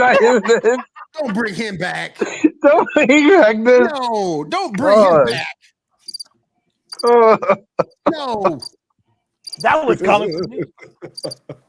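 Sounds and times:
laughter: 0.0s - 3.9s, 7.0s - 8.6s, 9.8s - 11.6s
speech: 0.0s - 5.6s, 7.0s - 8.8s, 9.6s - 11.6s
crickets chirping: 6.1s - 6.3s, 6.9s - 7.1s, 9.4s - 10.5s, 11.1s - 11.4s.

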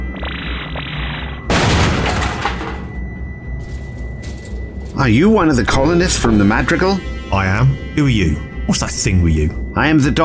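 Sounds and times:
steady humming tone: 1.3s - 9.7s
sci-fi blaster fire: 1.5s - 3.0s
speech: 5.0s - 10.2s.

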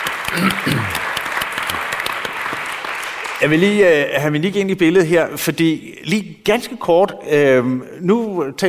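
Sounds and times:
audience clapping: 0.0s - 4.0s
speech: 0.3s - 1.1s, 3.4s - 8.6s.

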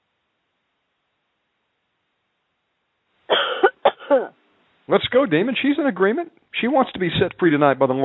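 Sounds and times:
woman giving deep forced rasping cough during deliverance prayer: 3.3s - 4.4s
speech: 4.1s - 8.0s.

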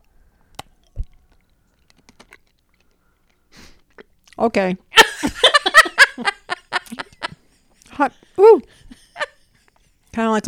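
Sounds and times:
biting and chewing food: 0.0s - 4.5s
speech: 4.4s - 4.9s, 8.0s - 8.8s, 10.2s - 10.4s
laughter: 5.0s - 9.6s.

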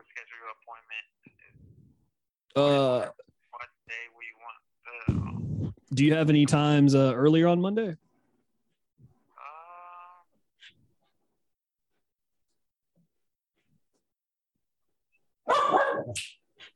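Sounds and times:
speech: 0.4s - 1.6s, 2.5s - 3.2s, 5.9s - 8.0s, 16.1s - 16.4s
dog barking: 15.5s - 16.2s.

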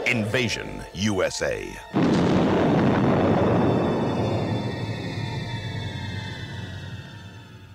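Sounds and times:
speech: 0.1s - 2.8s
movie trailer explosions booming: 1.9s - 6.3s.

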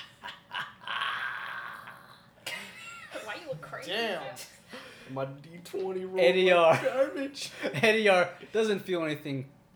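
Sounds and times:
person imitating a werewolf growl during a tabletop role-playing game: 1.0s - 2.2s
speech: 3.5s - 9.6s.

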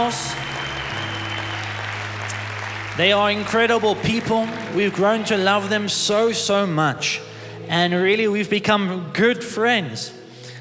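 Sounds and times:
speech: 0.0s - 0.6s, 3.0s - 10.2s
church audience clapping and applauding: 0.0s - 6.7s.

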